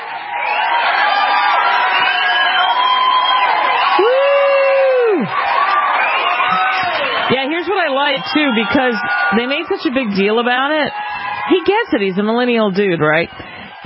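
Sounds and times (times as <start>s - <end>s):
studio audience cheering and applause: 0.0s - 13.8s
long sliding whoop: 1.1s - 5.4s
speech: 7.3s - 13.5s.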